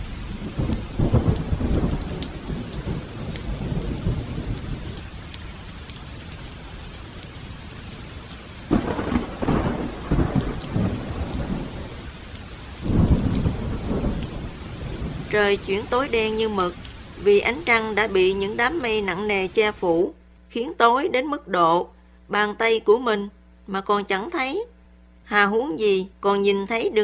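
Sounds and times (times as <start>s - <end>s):
thunder rumbling and booming: 0.0s - 8.0s, 8.6s - 19.8s
heavy rain pouring: 0.0s - 20.1s
speech: 15.4s - 24.7s, 25.3s - 27.0s.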